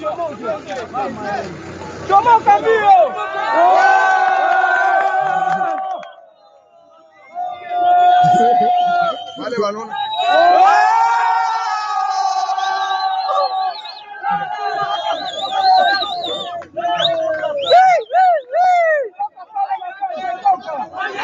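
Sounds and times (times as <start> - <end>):
hubbub of excited chatter: 0.0 - 21.2
crowd cheering and whooping: 2.6 - 21.2
crowd laughing: 3.1 - 6.0, 8.1 - 9.8, 13.0 - 21.2.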